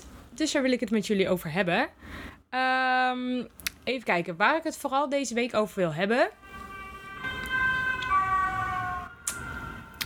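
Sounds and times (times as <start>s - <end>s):
speech: 0.4s - 6.4s
low rumble of traffic: 5.6s - 10.0s
ambulance siren with two-tone wail: 6.3s - 10.0s.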